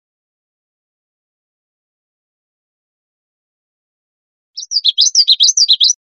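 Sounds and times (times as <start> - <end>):
common yellowthroat song: 4.6 - 6.0.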